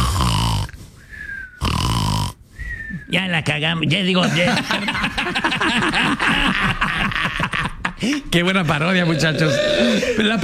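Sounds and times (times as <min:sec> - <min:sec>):
person snoring with loud rasping exaggerated snores: 0:00.0 - 0:00.8, 0:01.6 - 0:02.4, 0:09.0 - 0:10.4
speech: 0:03.1 - 0:10.4
laughter: 0:04.2 - 0:10.4.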